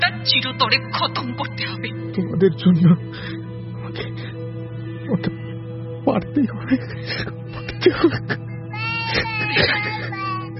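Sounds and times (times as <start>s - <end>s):
steady low tone: 0.0s - 8.9s
speech: 0.2s - 4.2s, 5.1s - 5.4s, 6.0s - 8.5s
person sobbing and whimpering: 2.6s - 3.2s, 6.6s - 10.5s.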